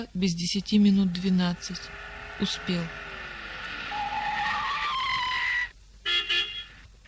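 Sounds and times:
speech: 0.0s - 3.1s
car tires squealing while braking to a stop: 0.8s - 5.7s
car horn honks: 3.9s - 6.8s.

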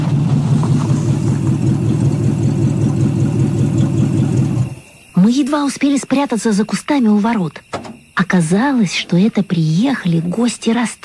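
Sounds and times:
approaching car engine rumbling: 0.0s - 5.0s
speech: 5.3s - 11.0s.

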